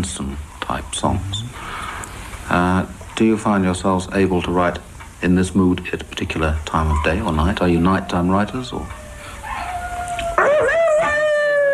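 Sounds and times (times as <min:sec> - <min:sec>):
speech: 0:00.0 - 0:01.8, 0:02.5 - 0:09.0
seven-week-old puppy howling: 0:06.8 - 0:11.7.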